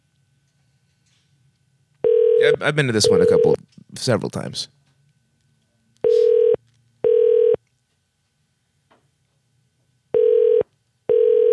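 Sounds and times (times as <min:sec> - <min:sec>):
telephone ringback tone while a call is being transferred: 0:02.0 - 0:03.6, 0:06.1 - 0:07.6, 0:10.2 - 0:11.5
speech: 0:02.6 - 0:04.8.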